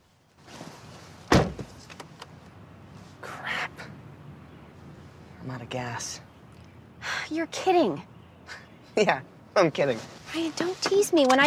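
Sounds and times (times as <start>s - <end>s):
car door shutting as someone gets into the driver's seat: 1.3s - 2.1s
speech: 5.5s - 6.3s, 7.3s - 11.4s.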